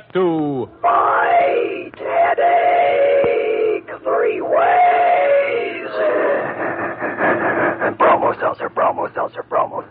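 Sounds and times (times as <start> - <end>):
speech: 0.1 - 1.0
voices chanting in time with train chugging: 0.8 - 9.8
train sound effect steady chugging: 2.0 - 9.8.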